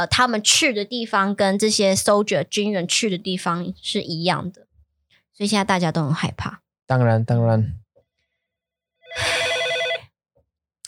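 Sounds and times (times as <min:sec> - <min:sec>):
speech: 0:00.0 - 0:04.7, 0:05.4 - 0:07.8, 0:09.1 - 0:09.6
telephone with bright trilling electronic ring: 0:09.1 - 0:10.1.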